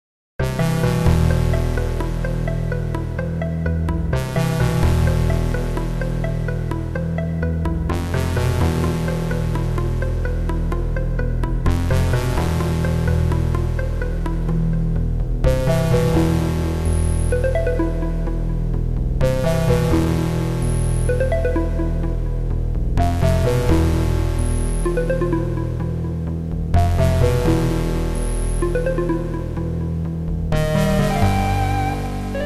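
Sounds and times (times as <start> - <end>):
Serdaco MP32L CM32LROM synthesizer music: 0.4 - 32.4.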